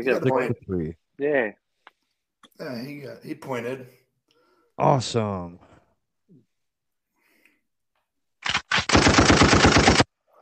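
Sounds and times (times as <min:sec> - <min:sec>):
speech: 0:00.0 - 0:01.6, 0:02.5 - 0:04.0, 0:04.8 - 0:05.7
rapid automatic gunfire in a game: 0:08.4 - 0:10.1.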